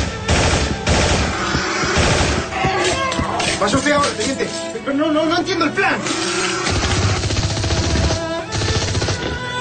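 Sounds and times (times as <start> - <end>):
machine-gun fire rattling through a smashed window shutter: 0.3 - 2.5, 6.7 - 9.4
speech: 3.6 - 6.3.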